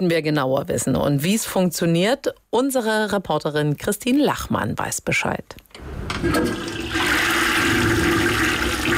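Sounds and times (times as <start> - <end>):
speech: 0.0 - 7.2
wastewater rushing down a drain: 6.1 - 8.9.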